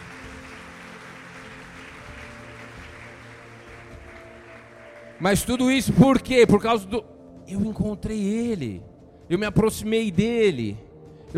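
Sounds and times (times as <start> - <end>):
audience applauding: 0.0 - 6.3
speech: 5.2 - 11.3.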